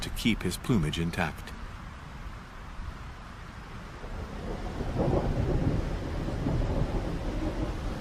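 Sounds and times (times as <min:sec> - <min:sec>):
steady rain: 0:00.0 - 0:08.0
speech: 0:00.2 - 0:01.6
violent wind gusts buffeting the microphone: 0:01.6 - 0:08.0
deep rolling thunder over the Fynbos: 0:04.0 - 0:08.0.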